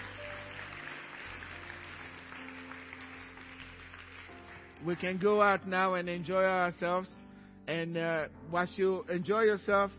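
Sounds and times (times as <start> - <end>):
audience applauding: 0.0 - 5.2
speech: 4.8 - 9.9.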